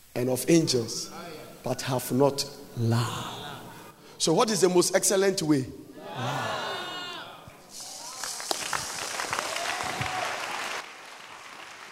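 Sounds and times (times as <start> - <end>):
speech: 0.2 - 3.4, 4.2 - 6.5
audience clapping: 7.7 - 11.9.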